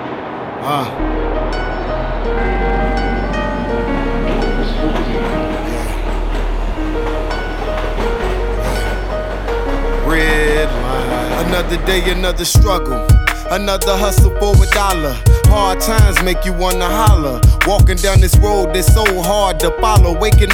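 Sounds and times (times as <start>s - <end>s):
subway train rumbling through a station: 0.0s - 14.6s
speech: 0.6s - 1.2s, 11.4s - 20.5s
faint crowd murmur: 0.6s - 9.6s.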